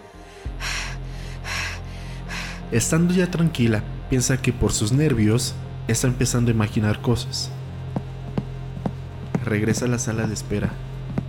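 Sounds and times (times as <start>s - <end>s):
deep airy breaths drawn in: 0.0s - 2.7s
speech: 2.7s - 7.6s, 9.5s - 10.8s.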